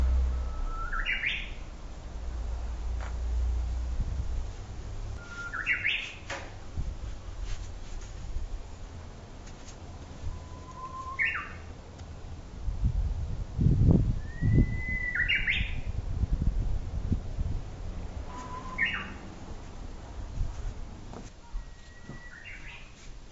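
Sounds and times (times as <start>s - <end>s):
Japanese bush warbler whistling song in spring: 0.0s - 1.7s, 5.2s - 6.4s, 10.2s - 11.7s, 14.2s - 16.0s, 18.3s - 19.3s, 21.5s - 23.0s
low rumbling background: 0.0s - 5.2s, 6.5s - 22.5s.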